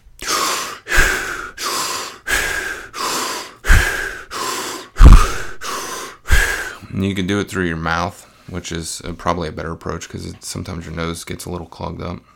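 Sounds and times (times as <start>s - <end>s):
fast deep breathing during a breathwork round: 0.2s - 6.9s
speech: 7.0s - 12.3s.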